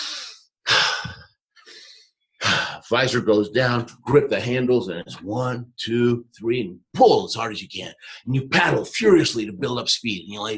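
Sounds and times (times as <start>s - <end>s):
person taking deep breaths on the ice before a sled start: 0.0s - 2.8s
speech: 2.8s - 10.5s.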